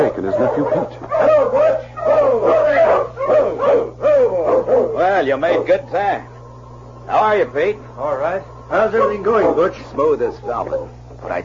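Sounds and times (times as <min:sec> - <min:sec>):
speech: 0:00.0 - 0:02.5, 0:05.2 - 0:06.3, 0:07.1 - 0:11.4
team of sled dogs barking and yipping: 0:00.0 - 0:06.1, 0:08.7 - 0:10.8.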